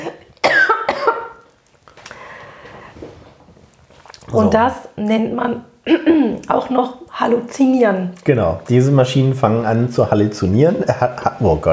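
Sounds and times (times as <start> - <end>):
speech: 0.0 - 0.3, 4.3 - 11.7
person coughing: 0.0 - 1.4.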